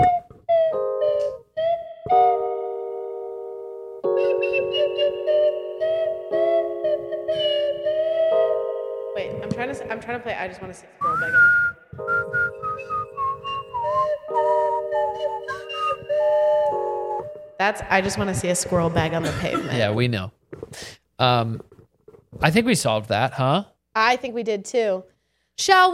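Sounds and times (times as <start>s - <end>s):
slide whistle playing sustained clear notes with upward glides: 0.0s - 3.0s, 4.0s - 9.2s, 11.0s - 17.7s
speech: 10.1s - 12.2s, 17.6s - 21.7s, 22.4s - 25.9s
laughter: 18.8s - 20.3s.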